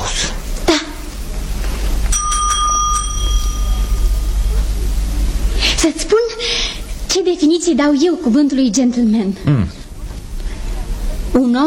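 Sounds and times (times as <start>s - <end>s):
low rumble: 0.0s - 11.6s
small handbell rung to call a servant: 2.1s - 4.5s
speech: 7.3s - 9.8s, 11.4s - 11.6s.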